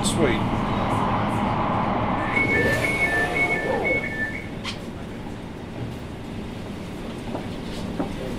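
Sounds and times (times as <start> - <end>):
underground commuter train rumbling along the rails: 0.0 - 8.3
high-pitched squeal of train wheels: 2.1 - 4.8.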